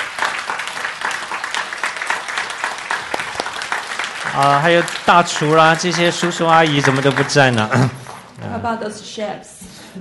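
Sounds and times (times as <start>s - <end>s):
crowd applauding at a banquet: 0.0s - 8.5s
speech: 4.4s - 9.9s.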